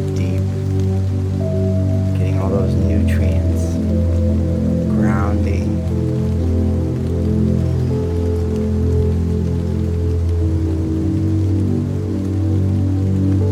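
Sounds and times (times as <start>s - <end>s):
low sustained droning hum: 0.0s - 12.5s
steady rain pattering on a surface: 0.0s - 13.5s.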